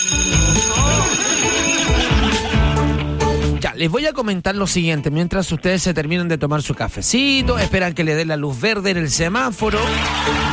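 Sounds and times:
school bell ringing: 0.0 - 2.1
laughter: 1.6 - 3.1, 9.6 - 10.5
speech: 3.8 - 10.5.

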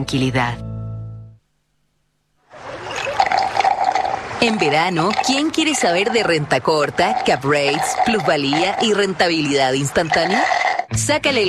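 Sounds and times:
speech: 0.0 - 0.6, 4.4 - 11.4
liquid pouring into a glass of sugared water or infusion: 2.6 - 10.9.

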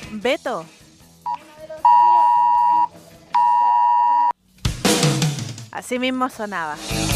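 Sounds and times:
speech: 0.3 - 0.8, 5.8 - 7.1
mobile phone alert tone with long loud buzzing beeps: 1.9 - 4.3.

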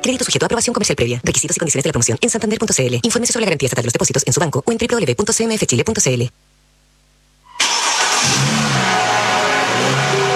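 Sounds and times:
speech: 0.0 - 6.5
car engine revving: 7.6 - 10.3.

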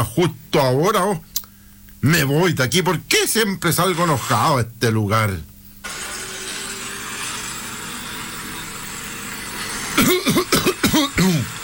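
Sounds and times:
speech: 0.0 - 1.3, 2.0 - 5.5
throat-clearing grunts from a persistent hoarse throat: 10.0 - 11.5
raspy coughs from a persistent hoarse throat: 10.0 - 11.6.

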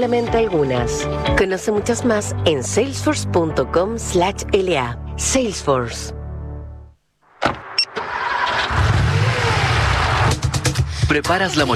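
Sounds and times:
speech: 0.0 - 6.2, 11.1 - 11.7
car engine cranking to life and revving: 7.7 - 11.3.

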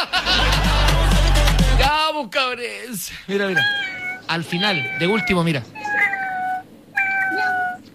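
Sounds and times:
laughter: 0.0 - 1.8
speech: 2.5 - 6.1
person imitating cat meows: 3.5 - 7.8.

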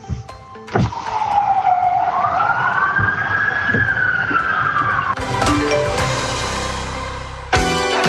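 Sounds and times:
traffic rumble: 0.0 - 7.5
fire engine siren wailing during a town centre parade in Puerto Montt: 0.9 - 6.5.

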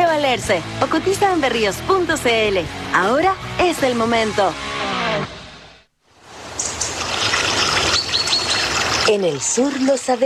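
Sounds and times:
speech: 0.3 - 5.4, 9.1 - 10.2
water trickling and flowing: 6.1 - 10.2.

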